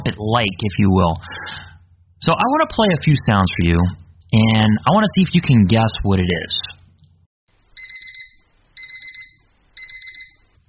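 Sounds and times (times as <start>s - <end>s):
speech: 0.0s - 1.6s, 2.2s - 6.6s
digital alarm clock beeping: 7.8s - 10.6s.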